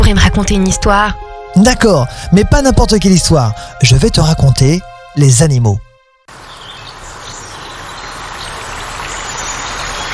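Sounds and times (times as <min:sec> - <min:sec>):
speech: 0:00.1 - 0:05.8
stream water flowing along a watercourse: 0:06.3 - 0:10.1.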